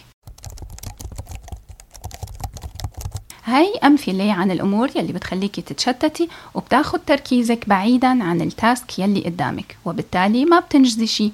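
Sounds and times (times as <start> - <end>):
typing on a computer keyboard: 0.2 - 3.3
speech: 3.5 - 11.3.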